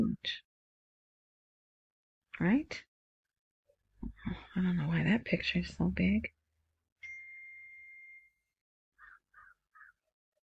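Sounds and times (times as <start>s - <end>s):
speech: 0.1s - 0.4s, 2.4s - 2.9s, 4.2s - 6.4s
phone notification ding: 7.0s - 8.5s.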